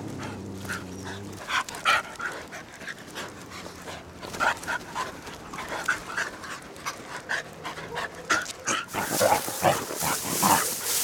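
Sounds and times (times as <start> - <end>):
dog panting at ground level in a neighbourhood: 1.4 - 11.0
bright rustling hiss: 8.9 - 11.0.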